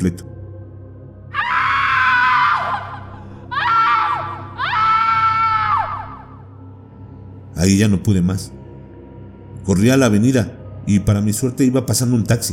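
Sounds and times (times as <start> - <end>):
speech: 0.0 - 0.3, 7.6 - 8.6, 9.6 - 12.5
shrill piercing scream from the trees: 1.3 - 6.5.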